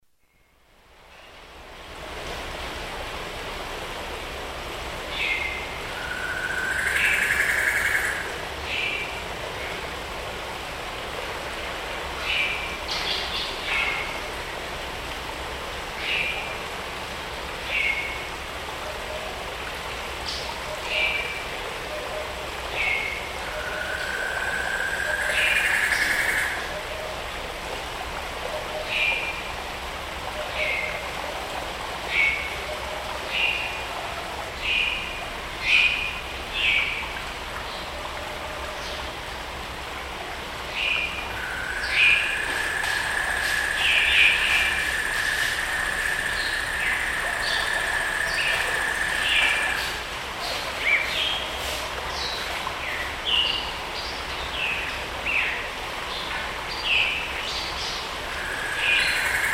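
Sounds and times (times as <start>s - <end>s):
tropical forest ambience: 0.0s - 59.5s.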